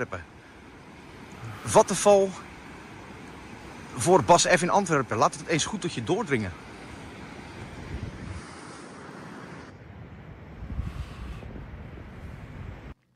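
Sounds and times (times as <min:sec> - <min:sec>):
speech: 0:00.0 - 0:00.3, 0:01.6 - 0:02.4, 0:04.0 - 0:06.6
waves washing onto a beach: 0:00.0 - 0:13.0
wind buffeting the microphone: 0:06.6 - 0:13.1.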